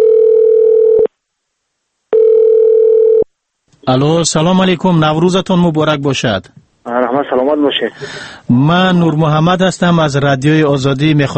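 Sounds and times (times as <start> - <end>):
telephone ringback tone: 0.0 - 1.1, 2.1 - 3.3
speech: 3.9 - 11.3.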